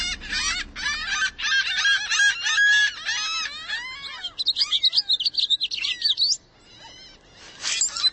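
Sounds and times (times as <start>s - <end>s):
rapid high bird trills: 0.0s - 3.3s
birds calling and chirping: 0.0s - 8.1s.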